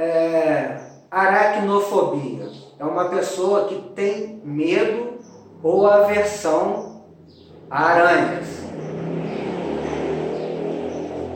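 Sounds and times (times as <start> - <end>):
speech: 0.0 - 6.8, 7.7 - 8.9
motorcycle engine roaring by outside: 5.2 - 11.3.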